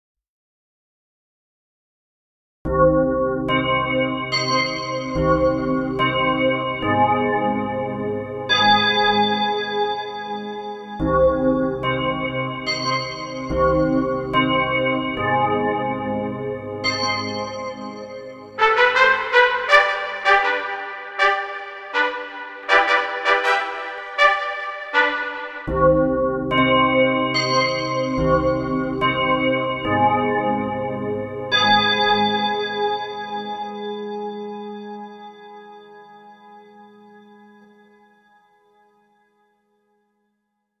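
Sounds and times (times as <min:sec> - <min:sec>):
bells: 0:03.4 - 0:35.8
trumpet fanfare: 0:18.6 - 0:25.8.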